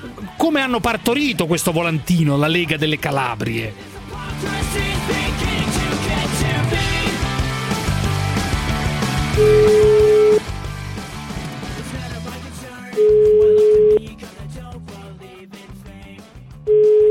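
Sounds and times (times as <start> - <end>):
music: 0.0 - 17.0
speech: 0.2 - 5.4
ringback tone of an outgoing telephone call: 9.4 - 10.4, 13.0 - 14.0, 16.7 - 17.0.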